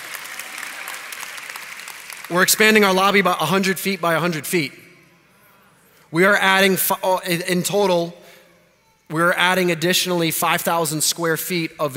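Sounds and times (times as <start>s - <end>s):
many hands clapping in steady applause: 0.0s - 3.2s
speech: 2.3s - 4.8s, 6.1s - 8.2s, 9.1s - 11.9s.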